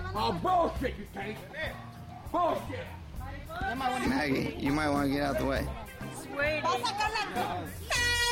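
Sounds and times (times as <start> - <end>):
speech: 0.2 - 3.0, 3.6 - 5.8, 6.4 - 8.0
air horn blasting: 7.9 - 8.3.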